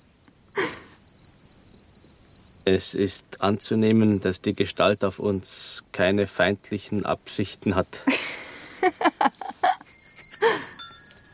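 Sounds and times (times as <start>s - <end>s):
speech: 2.6s - 8.2s, 9.0s - 9.4s
several bicycle bells ringing at different pitches: 9.6s - 11.3s.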